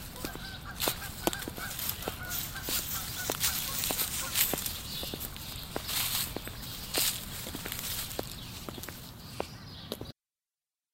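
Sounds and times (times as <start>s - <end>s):
honking calls: 0.0s - 5.3s
busy outdoor hum: 0.0s - 10.1s
footsteps on a street: 0.0s - 10.1s.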